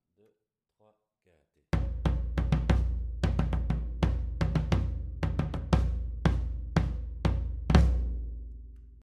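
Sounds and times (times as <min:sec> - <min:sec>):
batucada bass drum: 0:01.8 - 0:08.7.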